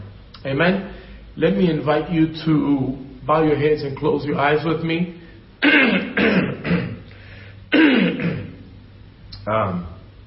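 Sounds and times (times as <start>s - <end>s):
speech: 0.4s - 6.4s
harsh coughing: 5.6s - 7.1s, 7.7s - 8.7s
throat clearing: 5.6s - 7.1s, 7.7s - 8.7s.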